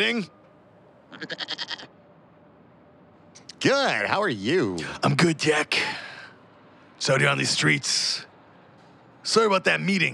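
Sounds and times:
speech: 0:00.0 - 0:00.4, 0:01.2 - 0:01.7, 0:03.6 - 0:06.1, 0:07.0 - 0:08.3, 0:09.2 - 0:10.1
goat bleating: 0:01.1 - 0:02.0.

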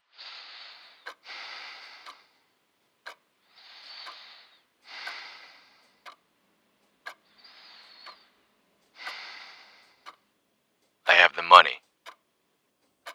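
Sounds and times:
hissy breaths through a tinny phone line: 0:00.2 - 0:02.6, 0:03.4 - 0:06.2, 0:07.2 - 0:10.2, 0:11.1 - 0:11.8
faint clicks on a phone line: 0:00.8 - 0:13.1.

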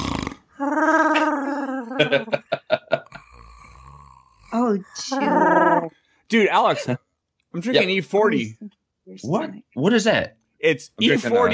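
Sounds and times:
person imitating a Wookiee snoring: 0:00.0 - 0:02.4, 0:03.0 - 0:05.9
laughter: 0:00.8 - 0:03.3
speech: 0:02.0 - 0:02.5, 0:04.6 - 0:07.0, 0:07.6 - 0:11.5.

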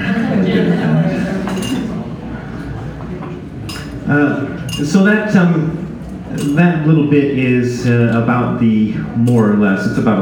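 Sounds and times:
laughter: 0:00.0 - 0:03.2
glass clinking: 0:01.5 - 0:01.9, 0:03.7 - 0:04.0, 0:04.7 - 0:05.0
speech: 0:04.1 - 0:10.2.

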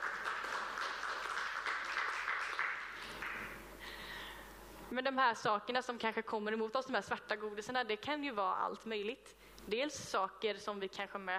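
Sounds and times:
audience applause: 0:00.0 - 0:03.7
speech: 0:04.9 - 0:11.3.

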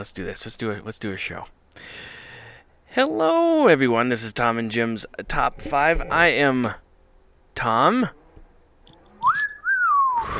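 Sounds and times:
speech: 0:00.0 - 0:02.2, 0:02.9 - 0:06.8, 0:07.6 - 0:08.2
person whistling a short two-part tune: 0:09.2 - 0:10.3.

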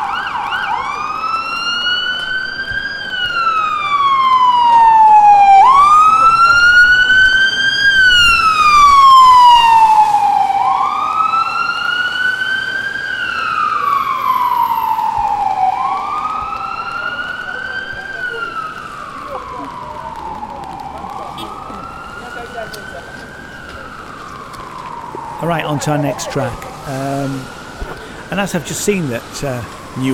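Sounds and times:
ambulance siren wailing in the street: 0:00.0 - 0:30.1
steady traffic rumble: 0:00.0 - 0:30.1
speech: 0:25.7 - 0:27.6, 0:28.3 - 0:30.1.

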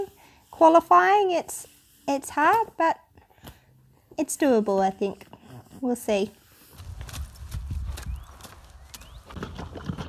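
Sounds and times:
speech: 0:00.6 - 0:03.0, 0:04.2 - 0:06.4
horse snuffling with low rumbles: 0:04.5 - 0:10.0
young horse noisily eating wet slop for breakfast: 0:09.0 - 0:10.0.

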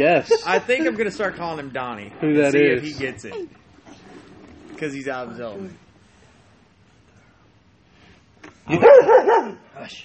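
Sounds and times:
speech: 0:00.0 - 0:03.6, 0:04.8 - 0:05.8, 0:08.7 - 0:10.0
dog barking in loud yips: 0:08.7 - 0:09.6.

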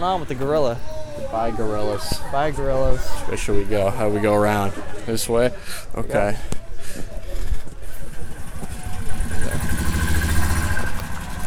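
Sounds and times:
speech: 0:00.0 - 0:07.1
engine of a gas-guzzling vehicle running at a zoo: 0:08.0 - 0:11.4.

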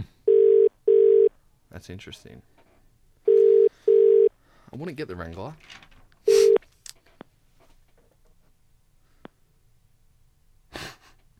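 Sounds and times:
phone line static from a caller's line cutting out: 0:00.3 - 0:01.3, 0:03.3 - 0:04.3, 0:06.3 - 0:06.6
speech: 0:01.8 - 0:02.6, 0:04.7 - 0:05.9.

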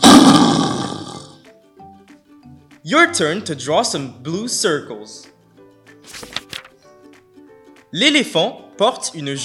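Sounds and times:
lion roaring: 0:00.0 - 0:01.4
speech: 0:02.9 - 0:05.3, 0:07.9 - 0:09.4.

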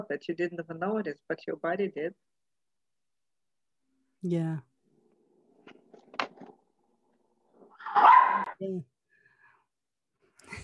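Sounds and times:
speech: 0:00.0 - 0:02.4, 0:04.2 - 0:04.7, 0:07.9 - 0:08.9
dogs barking: 0:07.8 - 0:08.6.

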